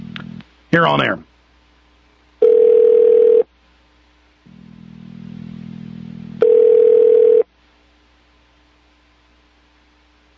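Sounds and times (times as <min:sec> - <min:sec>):
low buzzing hum on a telephone line: 0:00.0 - 0:10.3
speech: 0:00.7 - 0:01.3
telephone ringback tone from a call to an embassy: 0:02.4 - 0:03.5, 0:06.4 - 0:07.5.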